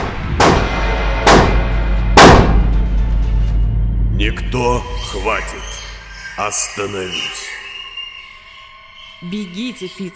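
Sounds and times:
gunshots: 0.0s - 2.7s
constant low rumbling hum: 0.0s - 9.9s
speech: 4.2s - 5.8s, 6.4s - 7.6s, 9.2s - 10.1s.

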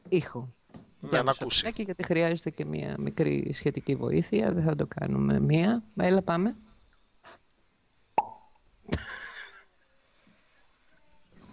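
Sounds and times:
speech: 0.1s - 7.4s
cork popping out of a bottle: 8.2s - 8.6s.

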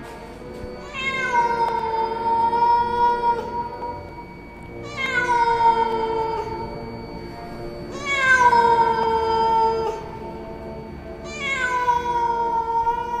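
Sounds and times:
cat yowling at night like a crying child: 0.8s - 4.0s, 4.8s - 6.6s, 7.9s - 10.2s, 11.2s - 13.1s.

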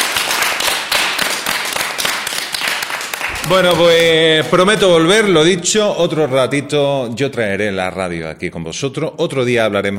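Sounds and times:
audience applause: 0.0s - 5.6s
speech: 3.4s - 9.9s.

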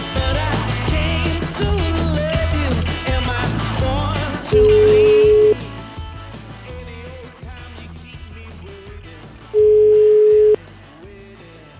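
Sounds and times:
loud continuous music: 0.0s - 11.7s
telephone line ringing as a call is placed: 4.6s - 5.6s, 9.6s - 10.6s.

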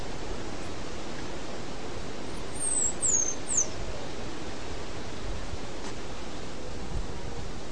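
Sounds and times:
constant hiss: 0.0s - 7.7s
Half-collared sparrow Arremon semitorquatus song: 2.2s - 4.5s.

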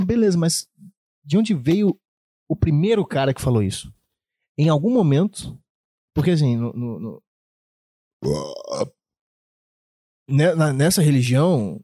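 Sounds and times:
speech: 0.0s - 4.0s, 4.6s - 5.6s, 6.2s - 7.3s, 8.2s - 9.0s, 10.3s - 11.8s
man with an upset stomach burping: 8.2s - 9.0s.

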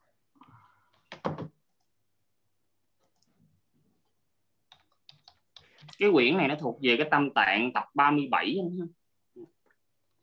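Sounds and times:
typing on a computer keyboard: 4.7s - 6.0s
speech: 6.0s - 9.0s.

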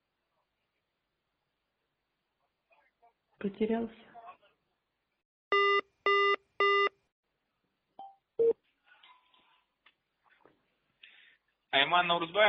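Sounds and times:
speech: 3.4s - 4.1s, 11.9s - 12.4s
telephone call beeps on an unanswered call: 5.5s - 6.9s.

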